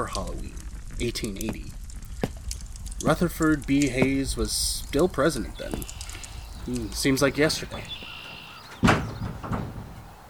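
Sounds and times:
speech: 0.0s - 1.8s, 3.0s - 6.0s, 6.6s - 8.1s
something bumping against a front door: 8.7s - 10.0s.

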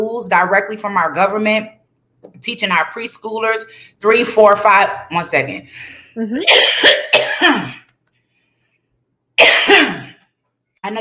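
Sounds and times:
speech: 0.0s - 7.8s, 10.8s - 11.0s
person clearing throat: 6.2s - 7.9s, 9.4s - 10.2s
person coughing harshly: 6.4s - 7.9s, 9.4s - 10.2s.

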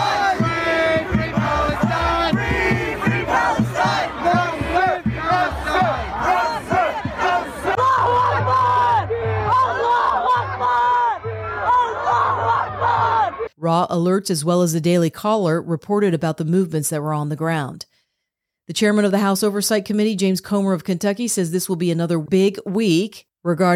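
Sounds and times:
large crowd of pro-Palestinian protesters yelling and chanting in the streets: 0.0s - 13.5s
speech: 13.7s - 17.9s, 18.7s - 23.7s.

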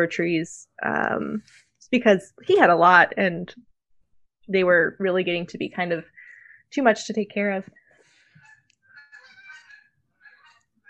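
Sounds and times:
speech: 0.0s - 3.7s, 4.5s - 7.8s
flock of geese honking flying overhead: 8.0s - 10.8s.

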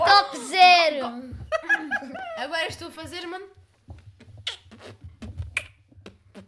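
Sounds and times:
laughter: 1.5s - 2.5s
speech: 2.4s - 3.6s
person beatboxing with sharp mouth clicks and pops: 3.9s - 6.4s.

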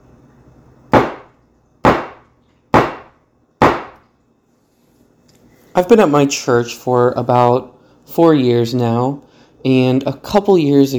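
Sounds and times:
hammer striking a nail: 0.9s - 4.0s
speech: 5.8s - 10.9s.

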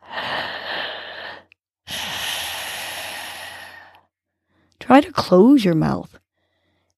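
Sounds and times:
long breaths drawn through a constricted throat: 0.0s - 4.1s
speech: 4.9s - 6.2s.

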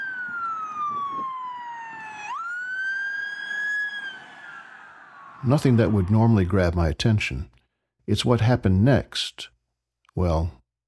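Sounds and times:
police siren wailing: 0.0s - 6.2s
speech: 5.4s - 9.5s, 10.2s - 10.6s.

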